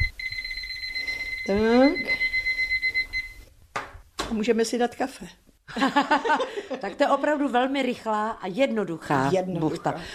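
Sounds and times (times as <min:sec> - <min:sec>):
kitchen timer high electronic beeps: 0:00.0 - 0:03.4
speech: 0:01.5 - 0:02.2, 0:04.4 - 0:10.1
laughter: 0:05.7 - 0:07.2.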